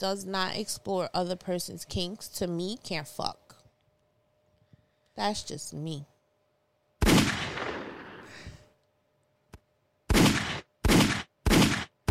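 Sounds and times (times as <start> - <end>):
speech: 0.0 - 3.5, 5.2 - 6.1
gunshots: 7.0 - 8.3, 10.1 - 12.1.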